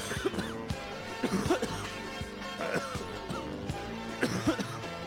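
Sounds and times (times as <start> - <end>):
short sharp coughs through a muffled phone line: 0.0 - 3.6, 4.2 - 4.9.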